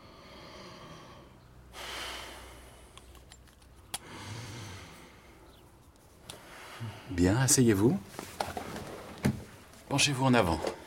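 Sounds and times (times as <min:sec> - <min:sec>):
deep breathing during a medical examination: 0:00.0 - 0:03.1, 0:04.0 - 0:05.6, 0:06.3 - 0:07.2
speech: 0:06.8 - 0:08.3, 0:09.9 - 0:10.8.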